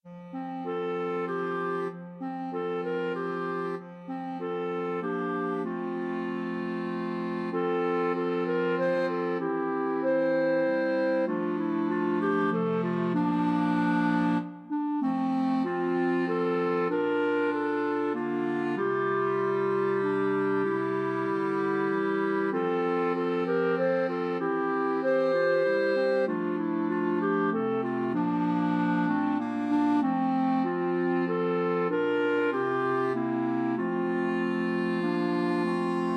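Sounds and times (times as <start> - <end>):
clarinet quartet playing: 0.0 - 36.1.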